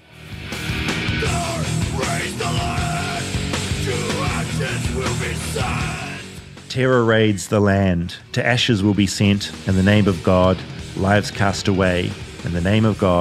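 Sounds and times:
loud dense band mix with pounding low end: 0.9 - 6.1
harsh strained screaming vocals: 1.0 - 6.4
speech: 6.7 - 13.1.

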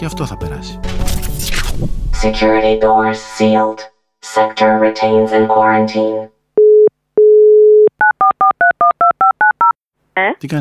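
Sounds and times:
speech: 0.0 - 6.4, 10.2 - 10.6
telephone dial tone: 6.6 - 9.7.

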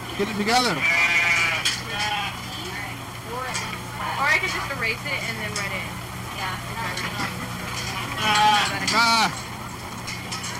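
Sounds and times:
steady hum: 0.0 - 10.5
speech: 0.2 - 1.1, 4.4 - 7.5, 8.2 - 9.5
sheep bleating: 0.6 - 2.4, 8.0 - 9.3.

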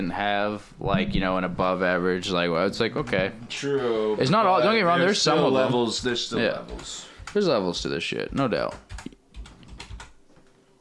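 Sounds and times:
speech: 0.0 - 9.1
typing on a computer keyboard: 5.6 - 10.2.

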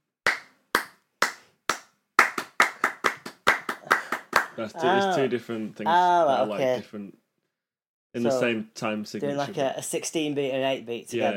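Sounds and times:
hand claps: 0.2 - 4.8
speech: 4.6 - 7.2, 8.2 - 11.3.

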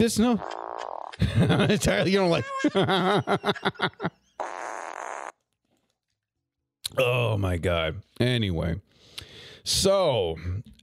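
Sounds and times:
speech: 0.0 - 4.2, 7.0 - 8.9, 9.6 - 10.7
quick bursts of laughter: 1.2 - 4.3
loud raspy fart: 4.4 - 5.4.

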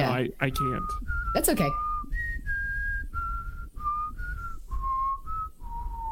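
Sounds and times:
speech: 0.0 - 1.9
person whistling a short tune: 0.4 - 6.1
low rumble: 0.6 - 6.1.

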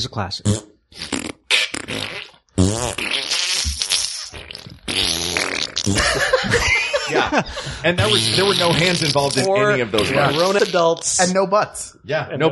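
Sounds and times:
speech: 0.0 - 1.0, 5.8 - 12.5
mouth raspberries imitating farts: 0.4 - 6.2, 8.0 - 11.3
laughter: 5.9 - 11.3.

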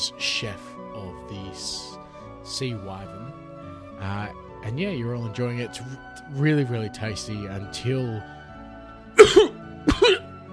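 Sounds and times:
speech: 0.2 - 1.8, 2.6 - 8.4
person coughing up blood with harsh wet coughs: 9.2 - 10.3.

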